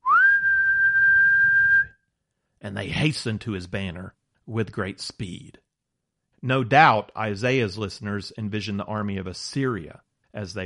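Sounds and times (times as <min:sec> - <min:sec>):
person whistling: 0:00.0 - 0:02.0
speech: 0:02.6 - 0:05.6, 0:06.4 - 0:10.6.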